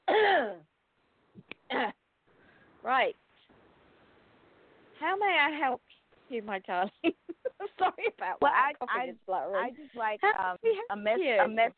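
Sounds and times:
person choking and clearing throat: 0:00.0 - 0:00.6
speech: 0:02.9 - 0:03.2, 0:05.0 - 0:11.7.

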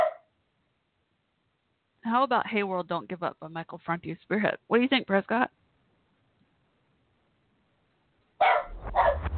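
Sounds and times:
10-year-old dog barking: 0:00.0 - 0:00.3, 0:08.4 - 0:09.2
speech: 0:02.0 - 0:05.6.

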